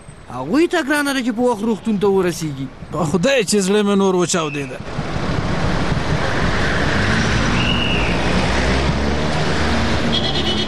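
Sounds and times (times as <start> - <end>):
cars passing in street traffic at a signal: 0.0 - 10.6
speech: 0.3 - 5.1.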